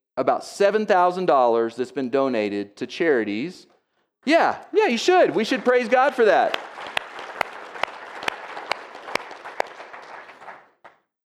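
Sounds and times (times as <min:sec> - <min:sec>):
speech: 0:00.2 - 0:07.0
room full of people applauding: 0:04.8 - 0:11.0.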